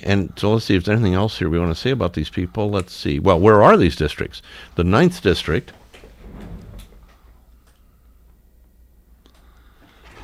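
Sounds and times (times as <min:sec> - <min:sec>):
speech: 0:00.0 - 0:05.8
quiet room hum: 0:00.0 - 0:10.2
door opened to let someone in: 0:06.1 - 0:07.2.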